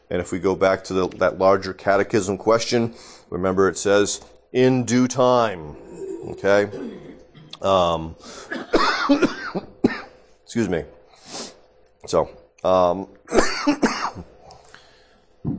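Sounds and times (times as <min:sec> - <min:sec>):
speech: 0:00.1 - 0:09.7, 0:10.5 - 0:11.4, 0:12.0 - 0:14.3
person coughing: 0:05.8 - 0:07.6, 0:08.3 - 0:10.2, 0:13.3 - 0:14.3
person clearing throat: 0:05.8 - 0:10.2, 0:13.3 - 0:14.3.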